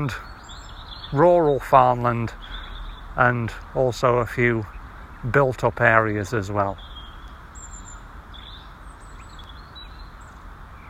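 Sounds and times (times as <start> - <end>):
speech: 0.0 - 0.3, 1.1 - 2.5, 3.2 - 6.9
birds chirping and tweeting in woodland: 0.0 - 10.8
steady outdoor hiss of wind or rustling: 0.0 - 10.8.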